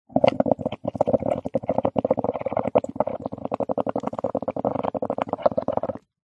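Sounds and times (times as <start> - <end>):
air bubbles blown into a bowl of water with foam: 0.1 - 6.2.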